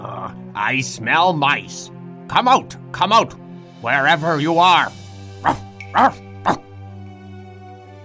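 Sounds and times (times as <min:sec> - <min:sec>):
speech: 0:00.6 - 0:06.6
dog barking while running around a kitchen table: 0:05.4 - 0:06.7.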